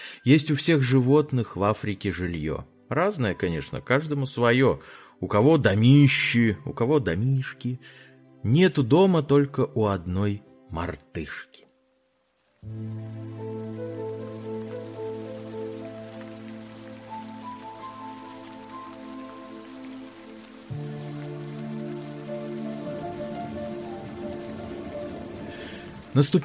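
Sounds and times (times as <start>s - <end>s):
speech: 0.2s - 11.6s, 12.6s - 14.4s, 26.1s - 26.4s
heavy downpour of rain: 12.0s - 26.4s
sustained musical tones: 12.7s - 26.4s.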